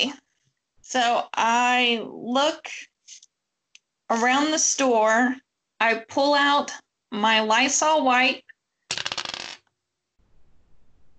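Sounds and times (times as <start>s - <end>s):
speech: 0.0s - 0.2s, 0.9s - 2.9s, 4.1s - 8.4s
dice rattling and clattering: 8.9s - 9.7s.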